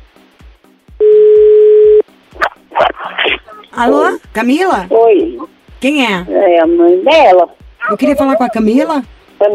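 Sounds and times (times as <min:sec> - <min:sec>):
telephone ringback tone of an outgoing call: 0:01.0 - 0:02.0
speech: 0:03.8 - 0:09.5.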